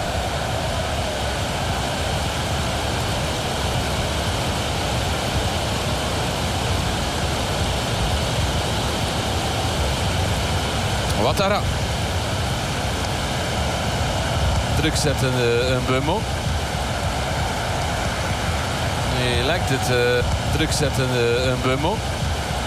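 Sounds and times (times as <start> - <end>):
heavy rain pouring on a football match under floodlights: 0.0 - 22.6
speech: 11.4 - 11.8, 14.8 - 16.4, 19.2 - 22.2.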